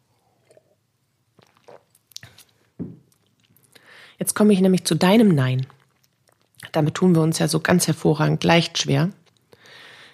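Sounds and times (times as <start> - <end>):
wet mouth sounds and lip smacks: 1.4 - 3.8, 5.8 - 6.6
speech: 4.2 - 5.8, 6.8 - 9.2.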